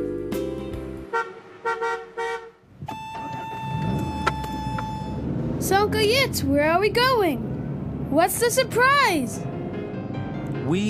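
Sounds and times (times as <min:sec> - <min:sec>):
car horn short honks: 0:01.0 - 0:05.3
car pulling up: 0:01.3 - 0:10.8
speech: 0:05.7 - 0:07.5, 0:08.1 - 0:09.5, 0:10.7 - 0:10.8.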